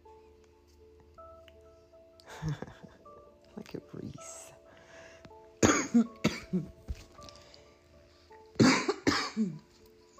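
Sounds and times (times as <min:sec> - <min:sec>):
speech: 0:02.4 - 0:02.9, 0:06.0 - 0:06.8
person coughing hard after two weeks of coughing: 0:05.6 - 0:06.8, 0:08.6 - 0:09.7.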